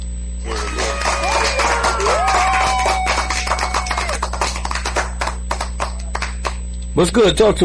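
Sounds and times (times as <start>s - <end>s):
crowd applauding: 0.4s - 6.6s
whoops and whistles from a crowd: 0.5s - 4.2s
speech: 7.0s - 7.6s.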